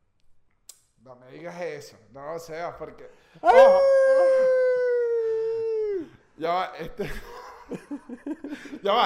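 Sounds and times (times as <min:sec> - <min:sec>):
speech: 0:01.0 - 0:04.0, 0:06.4 - 0:09.0
person howling like a wolf: 0:03.4 - 0:06.1
laughter: 0:06.8 - 0:09.0.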